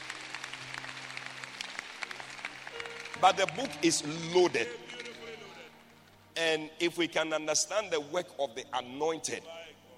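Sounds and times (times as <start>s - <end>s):
audience clapping: 0.0s - 5.9s
speech: 3.2s - 5.1s, 6.4s - 9.6s.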